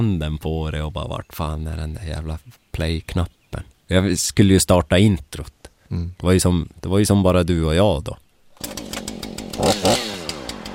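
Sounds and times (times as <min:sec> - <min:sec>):
speech: 0:00.0 - 0:08.7, 0:09.6 - 0:10.1
chainsaw engine idling and revving: 0:08.5 - 0:10.7.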